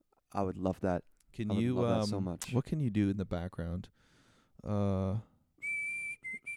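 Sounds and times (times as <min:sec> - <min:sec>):
speech: 0:00.3 - 0:05.3
person whistling high steady notes: 0:05.6 - 0:06.5.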